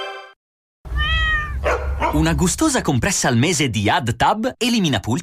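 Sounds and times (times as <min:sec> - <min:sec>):
cat meowing: 0:00.9 - 0:02.0
speech: 0:02.2 - 0:05.2.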